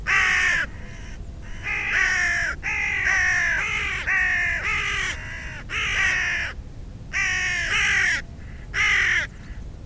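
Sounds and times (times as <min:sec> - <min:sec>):
low background noise: 0:00.0 - 0:09.8
carrion crow cawing: 0:00.1 - 0:09.4.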